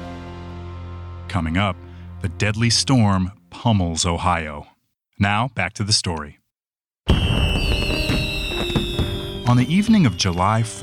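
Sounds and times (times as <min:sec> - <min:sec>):
speech: 0:01.3 - 0:06.4, 0:09.5 - 0:10.8
fireworks exploding at a Fourth of July celebration: 0:07.1 - 0:10.8
high steady whistling tones of fireworks: 0:07.1 - 0:10.8.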